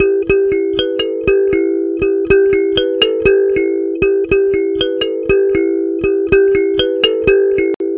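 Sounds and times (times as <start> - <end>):
thumb piano with more treble: 0.0 - 7.9.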